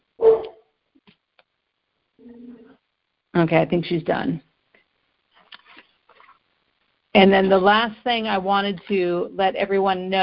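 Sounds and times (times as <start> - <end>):
dog barking: 0.2 - 0.6
speech: 3.4 - 4.5, 7.2 - 10.2.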